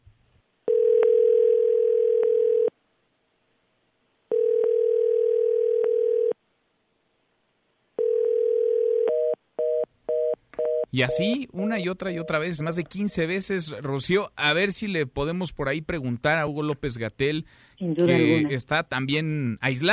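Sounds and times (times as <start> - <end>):
telephone line tone from unanswered call: 0.7 - 2.7, 4.3 - 6.4, 8.0 - 12.4
speech: 10.9 - 19.9.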